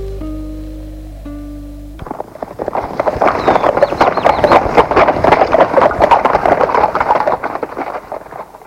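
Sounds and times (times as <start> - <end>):
horse hooves clip-clopping at a brisk pace: 2.0 - 8.6.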